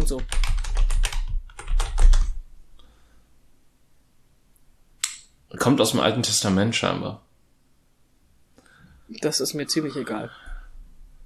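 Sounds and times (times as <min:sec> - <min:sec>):
rapid typing on a computer keyboard: 0:00.0 - 0:02.4
speech: 0:00.1 - 0:00.4, 0:05.5 - 0:07.3, 0:09.1 - 0:10.5.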